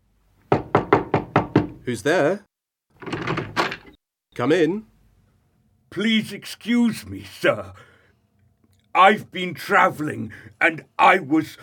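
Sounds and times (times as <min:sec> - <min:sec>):
firm knocks on a door: 0:00.5 - 0:01.8
speech: 0:01.8 - 0:03.3, 0:04.4 - 0:04.9, 0:05.9 - 0:07.9, 0:09.0 - 0:11.6.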